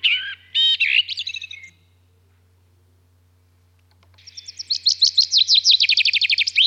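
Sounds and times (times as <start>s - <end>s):
common blackbird singing: 0.0s - 1.9s, 4.2s - 6.6s.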